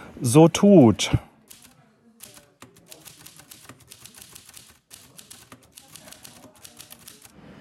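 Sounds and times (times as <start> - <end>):
speech: 0.2 - 1.3
small flat mechanical Gossen typewriter typing: 1.5 - 7.4.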